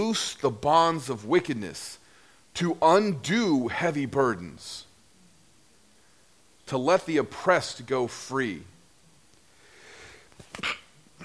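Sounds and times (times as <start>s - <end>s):
speech: 0.0s - 2.0s, 2.6s - 4.9s, 6.7s - 8.7s, 10.5s - 10.8s
single human sneeze: 10.5s - 11.2s.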